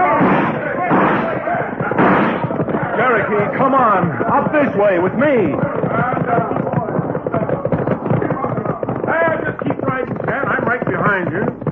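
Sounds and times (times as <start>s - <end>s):
people shouting: 0.0s - 8.0s
dense rapid gunfire during a robbery: 0.0s - 11.7s
speech: 3.3s - 6.5s, 11.1s - 11.6s.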